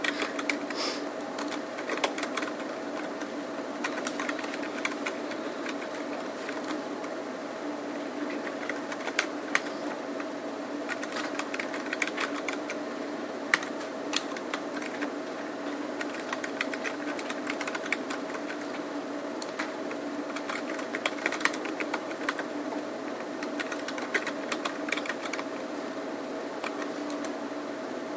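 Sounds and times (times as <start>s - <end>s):
fingers typing on a computer keyboard: 0.0s - 0.8s, 1.4s - 3.2s, 3.8s - 6.8s, 8.4s - 9.7s, 10.9s - 12.8s, 13.5s - 15.1s, 16.0s - 18.8s, 20.3s - 22.5s, 23.4s - 25.5s, 26.6s - 27.3s
low electrical hum: 0.0s - 28.1s.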